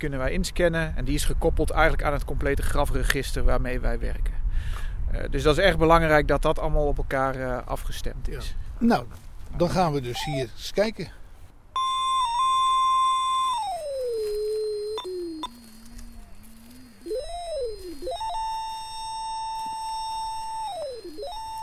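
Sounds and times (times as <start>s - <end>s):
speech: 0.0s - 11.2s
electronic grave-tag detector whine in a cemetery: 11.8s - 21.6s.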